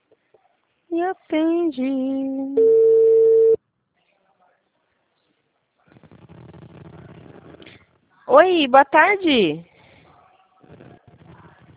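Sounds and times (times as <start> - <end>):
speech: 0.9 - 3.0, 8.3 - 9.7
telephone ringing tone while a call is placed: 2.6 - 3.6.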